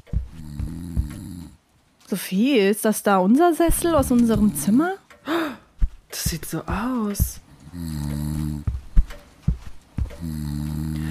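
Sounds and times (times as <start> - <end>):
soft thuds: 0.0 - 1.5, 3.6 - 4.8, 5.7 - 7.5, 8.3 - 11.0
long deep rumbling snores: 0.2 - 1.6, 7.6 - 8.8, 10.0 - 11.0
speech: 2.1 - 5.0, 6.3 - 8.7.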